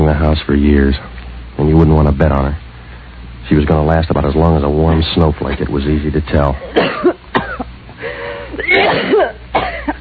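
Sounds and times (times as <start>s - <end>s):
speech: 0.2s - 2.6s, 3.5s - 7.1s
person coughing harshly and wetly: 6.6s - 7.7s, 8.4s - 9.9s
strained raspy breaths: 8.0s - 8.6s.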